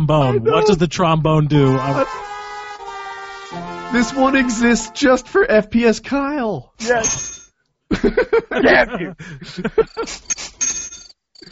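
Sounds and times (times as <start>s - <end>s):
laughter: 0.0s - 0.8s, 1.7s - 4.4s, 7.9s - 10.2s
speech: 0.1s - 2.3s, 3.5s - 10.5s
crickets chirping: 9.8s - 10.4s.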